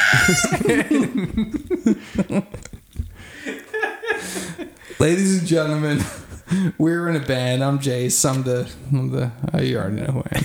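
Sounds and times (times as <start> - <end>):
person making bird-like squawks and clucks: 0.0 - 0.6
chuckling laughter: 0.0 - 7.4
speech: 0.1 - 2.8, 4.2 - 10.4.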